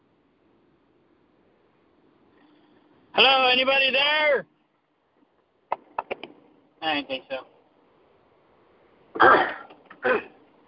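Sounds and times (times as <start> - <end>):
speech: 3.2 - 4.5, 6.8 - 7.5, 9.2 - 10.3
person clearing throat: 9.2 - 10.4.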